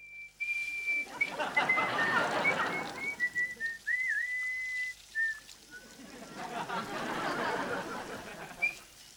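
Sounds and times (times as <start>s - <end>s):
man whistling a tune: 0.0s - 6.0s, 8.6s - 8.8s
laughter: 1.0s - 3.3s, 5.8s - 8.8s
rushing splashing water-like noise: 1.1s - 9.1s.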